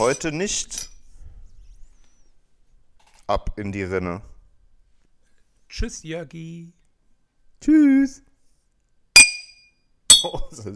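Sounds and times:
speech: 0:00.0 - 0:00.9, 0:03.3 - 0:04.3, 0:05.7 - 0:06.8, 0:07.6 - 0:08.3, 0:10.2 - 0:10.7
clinking on a glass water carafe: 0:09.2 - 0:10.4.

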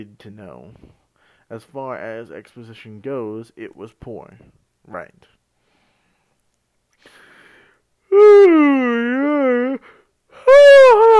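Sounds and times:
speech: 0:00.0 - 0:05.4, 0:08.1 - 0:09.9
person yawning: 0:08.1 - 0:11.1.

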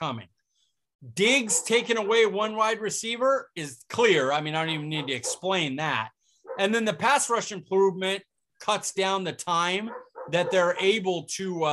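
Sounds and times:
speech: 0:00.0 - 0:00.4, 0:01.0 - 0:11.7
dogs barking outside: 0:01.3 - 0:02.3, 0:04.6 - 0:05.6, 0:06.4 - 0:06.8, 0:09.8 - 0:11.1.

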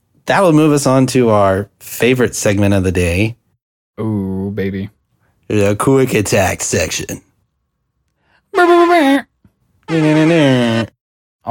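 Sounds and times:
speech: 0:00.3 - 0:03.4, 0:04.0 - 0:07.3, 0:08.5 - 0:09.3, 0:09.9 - 0:11.5
loud air horn blast sound effect: 0:08.5 - 0:10.9.

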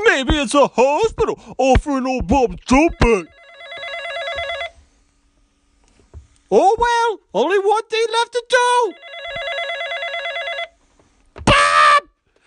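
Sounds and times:
speech: 0:00.2 - 0:03.4, 0:06.5 - 0:09.5
telephone bell ringing: 0:03.0 - 0:04.8, 0:08.8 - 0:10.8.

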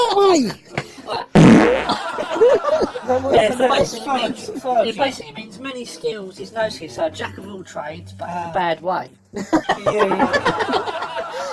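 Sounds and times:
speech: 0:00.4 - 0:01.2, 0:01.9 - 0:11.5
people laughing: 0:00.7 - 0:05.4, 0:09.3 - 0:11.5
loud raspy fart: 0:01.3 - 0:02.2.

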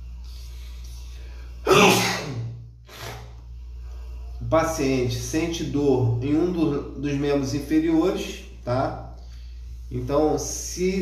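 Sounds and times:
person sneezing: 0:01.6 - 0:03.3
speech: 0:04.5 - 0:09.1, 0:09.9 - 0:11.0.

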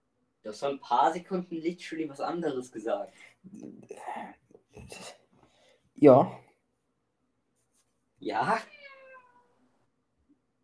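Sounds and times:
speech: 0:00.4 - 0:05.2, 0:06.0 - 0:06.4, 0:08.2 - 0:08.7
cat meowing with creaky tone: 0:08.4 - 0:09.7.

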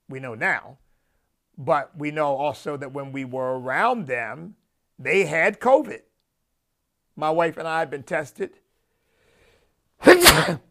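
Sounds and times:
speech: 0:00.1 - 0:00.9, 0:01.6 - 0:06.1, 0:07.2 - 0:08.6, 0:10.0 - 0:10.6
human sneeze: 0:10.0 - 0:10.6.

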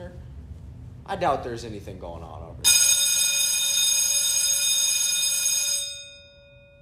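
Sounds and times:
speech: 0:01.1 - 0:02.7
loud electric school bell mounted in the room ringing: 0:02.6 - 0:06.8.

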